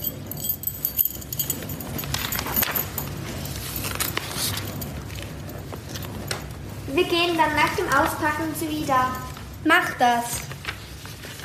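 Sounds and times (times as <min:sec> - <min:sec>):
cabin keys jangling and clinking as they are handed over: 0:00.0 - 0:06.2
speech: 0:07.0 - 0:10.5.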